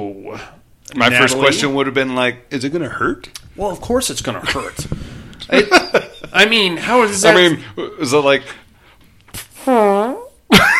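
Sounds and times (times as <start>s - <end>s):
speech: 0.0s - 8.6s, 9.6s - 10.2s
laughter: 5.4s - 7.2s
person making a buzzing mouth noise imitating a fart: 9.3s - 10.4s.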